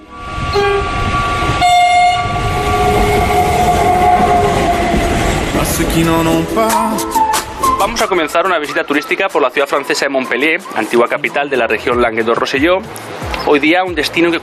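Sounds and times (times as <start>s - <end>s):
train horn: 0.0s - 6.0s
train running with rumble and rattle of the cars: 0.0s - 8.7s
speech: 5.9s - 7.2s, 7.8s - 14.4s.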